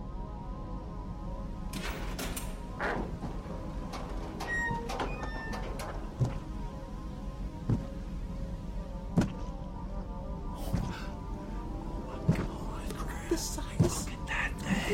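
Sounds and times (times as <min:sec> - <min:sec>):
steady low hum: 0:00.0 - 0:14.9
door lock clacking and rattling: 0:01.7 - 0:06.5
door swinging open with a scraping whoosh and squeaky metallic tones: 0:01.8 - 0:06.6.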